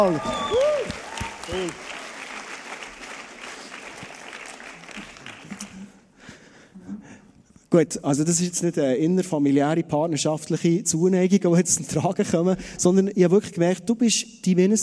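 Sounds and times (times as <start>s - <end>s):
speech: 0.0s - 0.5s, 1.5s - 1.9s, 7.7s - 14.8s
person cheering: 0.0s - 2.1s
audience applause for stage crew: 0.0s - 6.0s.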